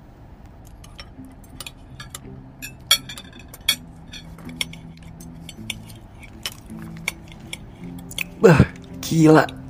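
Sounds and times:
low steady hum: 0.0s - 9.6s
metal cutlery clinking and scraping against plates while eating fried chicken: 0.8s - 8.3s
speech: 8.4s - 9.6s.

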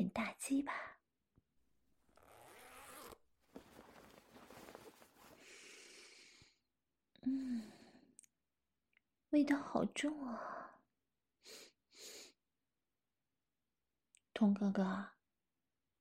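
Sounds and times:
speech: 0.1s - 0.9s, 9.3s - 10.7s, 14.4s - 15.2s
trouser zipper being undone: 2.0s - 5.4s.

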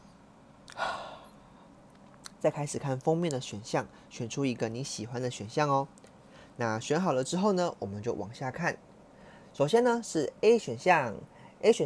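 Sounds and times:
deep breath: 0.7s - 1.8s, 6.2s - 6.6s, 9.1s - 9.5s
speech: 2.4s - 8.9s, 9.6s - 11.8s.

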